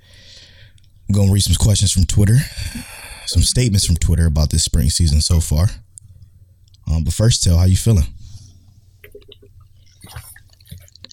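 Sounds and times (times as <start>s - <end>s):
speech: 1.1s - 5.9s, 6.9s - 8.2s
person gulping water from a large jug: 2.6s - 3.6s, 9.0s - 11.1s
water sloshing in a large jug: 9.0s - 11.1s.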